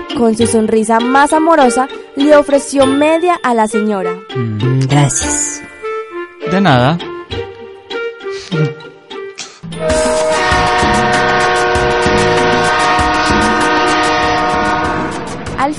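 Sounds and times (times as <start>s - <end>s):
speech: 0.2s - 5.7s, 6.4s - 7.1s, 8.5s - 8.8s
train horn: 9.8s - 15.5s
ringing metallic hum: 9.8s - 15.6s.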